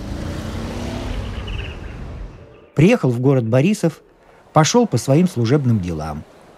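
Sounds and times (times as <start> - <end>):
car engine rumbling as the vehicle pulls away: 0.0 - 3.6
speech: 2.8 - 6.3.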